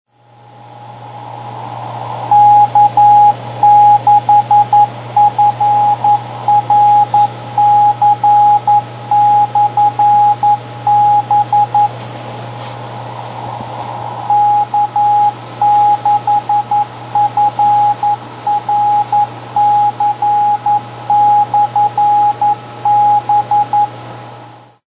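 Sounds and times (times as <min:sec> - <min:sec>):
beacon signal: 0:02.3 - 0:11.9, 0:14.2 - 0:23.9.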